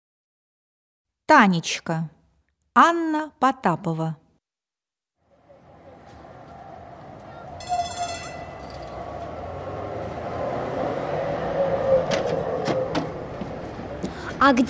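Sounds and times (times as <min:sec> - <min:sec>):
speech: 0:01.3 - 0:02.2, 0:02.8 - 0:04.2, 0:14.4 - 0:14.6
tram bell-like ringing burst: 0:05.3 - 0:11.1
tram car rolling along rails with metallic squeals: 0:05.3 - 0:14.6.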